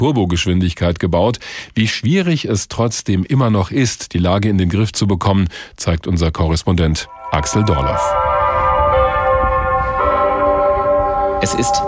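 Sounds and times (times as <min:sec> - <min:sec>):
speech: 0:00.0 - 0:08.3, 0:11.4 - 0:11.8
bells ringing from the customs house in Wuhan on a January morning: 0:07.1 - 0:11.8.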